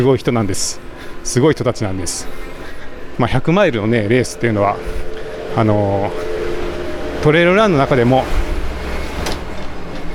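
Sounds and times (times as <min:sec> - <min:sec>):
speech: 0:00.0 - 0:02.5, 0:03.2 - 0:06.3, 0:07.2 - 0:08.4
car rumbling past on a street in front of Ginkaku-ji temple: 0:04.2 - 0:10.1.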